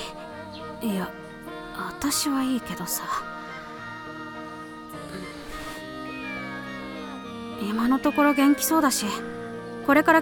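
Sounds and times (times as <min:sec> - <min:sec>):
speech: 0:00.8 - 0:01.2, 0:01.8 - 0:03.3, 0:07.6 - 0:10.2
cat that had eaten chocolate meowing: 0:05.2 - 0:09.4.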